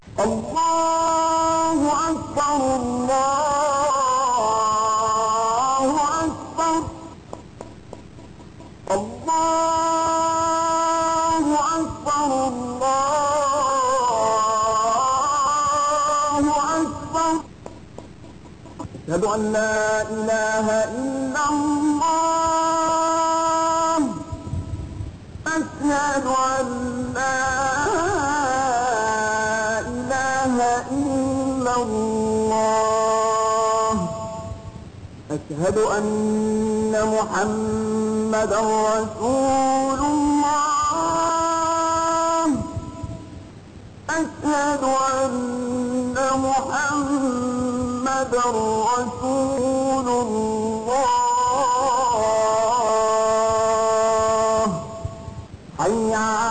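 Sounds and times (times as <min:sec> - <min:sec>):
azan call to prayer in Egypt: 0:00.0 - 0:56.4.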